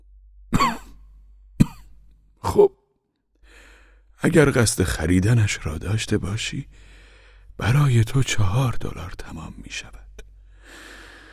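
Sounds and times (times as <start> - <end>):
elderly man coughing: 0.5 - 1.0, 1.6 - 2.8
speech: 2.6 - 2.8, 4.2 - 6.9, 7.6 - 10.0.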